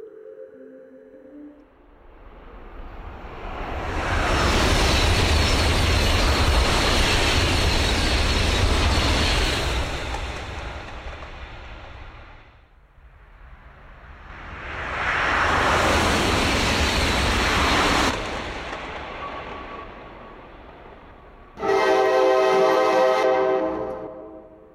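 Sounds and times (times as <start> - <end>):
trains rushing past and crossing each other: 0.0 - 24.7
loud steam train horn: 21.6 - 24.7.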